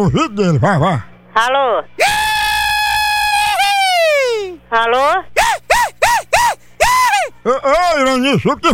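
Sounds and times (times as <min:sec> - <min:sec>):
speech: 0:00.0 - 0:02.2, 0:04.7 - 0:05.3, 0:07.4 - 0:08.7
woman screaming to scare off mosquitoes: 0:02.0 - 0:04.6, 0:05.4 - 0:07.3.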